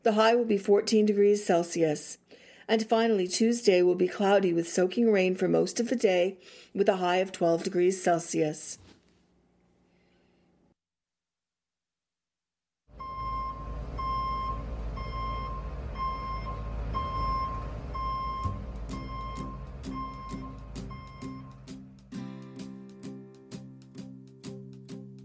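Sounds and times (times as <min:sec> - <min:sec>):
speech: 0:00.0 - 0:08.9
truck reversing beeps: 0:12.9 - 0:21.7
low rumbling drone: 0:13.0 - 0:21.6
plucked musical notes: 0:18.4 - 0:25.0.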